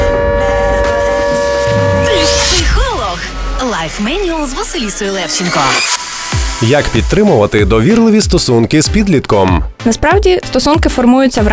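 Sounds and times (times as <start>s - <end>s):
air raid siren sounding during an alert: 0.0s - 7.2s
low hum: 0.0s - 7.6s
speech: 4.0s - 11.5s.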